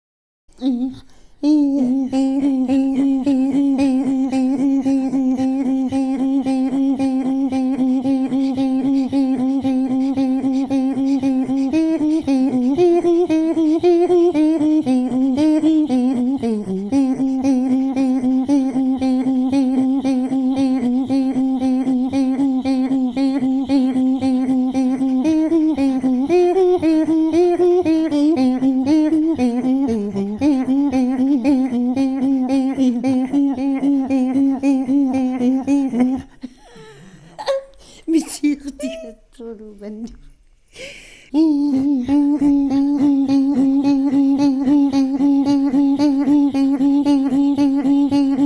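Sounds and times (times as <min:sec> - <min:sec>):
Inuit throat singing: 0:00.5 - 0:48.4.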